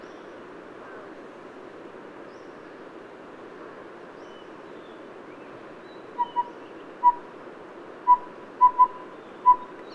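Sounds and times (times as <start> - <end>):
low background hiss: 0.0 - 9.9
collared owlet Glaucidium brodiei giving whistled hoots: 6.2 - 7.2, 8.1 - 9.7.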